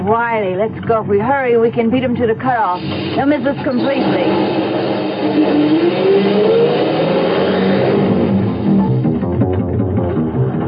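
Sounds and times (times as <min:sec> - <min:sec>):
speech: 0:00.0 - 0:07.0
truck engine revving while speeding: 0:02.7 - 0:10.6.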